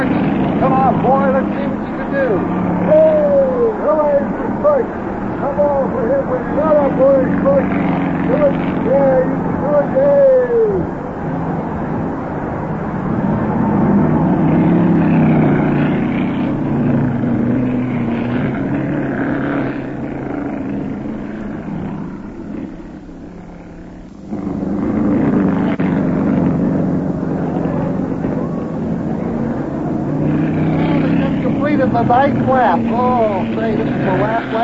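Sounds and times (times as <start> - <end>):
racing car engines roaring during a race: 0.0 - 34.6
speech: 0.9 - 3.2, 3.8 - 11.0, 32.2 - 34.6.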